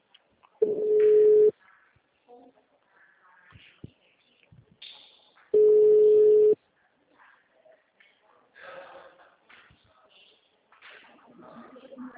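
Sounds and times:
faint sounds: 0.0s - 12.1s
ringback tone of an outgoing telephone call: 0.6s - 1.5s, 5.6s - 6.6s.

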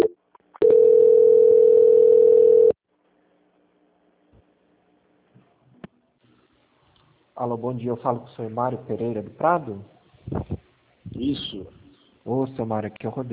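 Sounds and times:
telephone line tone during a call transfer: 0.0s - 2.8s
speech: 7.4s - 10.0s, 11.2s - 13.3s.

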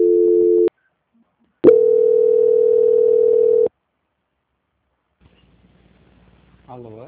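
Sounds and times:
dual-pitched telephone line tone during a call transfer: 0.0s - 0.7s, 1.6s - 3.7s.

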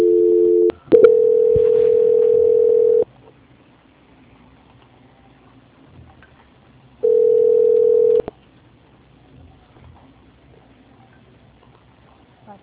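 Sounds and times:
telephone signaling tones during a call transfer: 0.0s - 3.0s, 7.0s - 8.3s.

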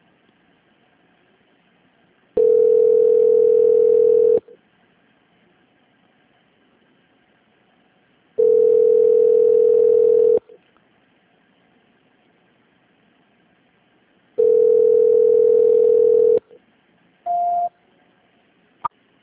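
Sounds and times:
telephone ringback tone: 2.4s - 4.4s, 8.4s - 10.4s, 14.4s - 16.4s.

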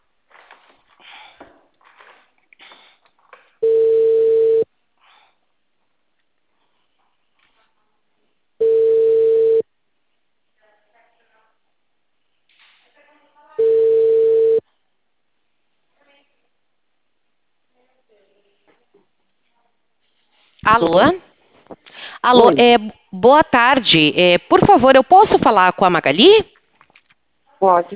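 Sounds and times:
telephone tone on the line after the caller hangs up: 3.6s - 4.7s, 8.6s - 9.7s, 13.6s - 14.6s
speech: 20.7s - 26.6s, 27.6s - 27.9s.

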